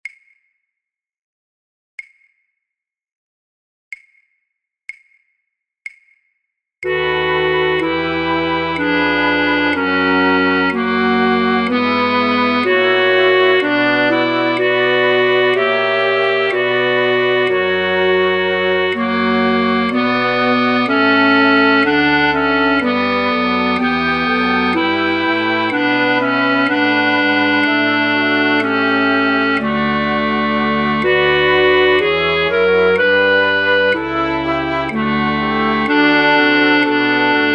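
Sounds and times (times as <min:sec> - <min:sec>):
alto flute in a flute orchestra practice track: 0:06.8 - 0:37.5.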